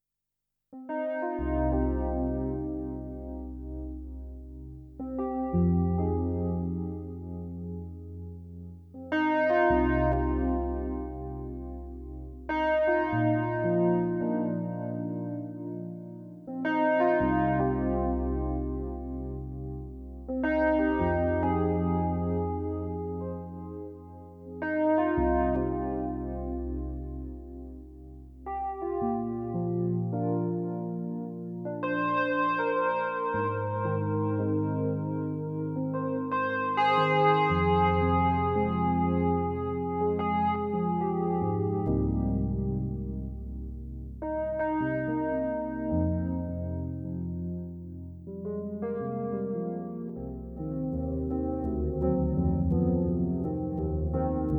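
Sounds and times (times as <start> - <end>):
Roland System8 synthesizer: 0.8 - 54.5.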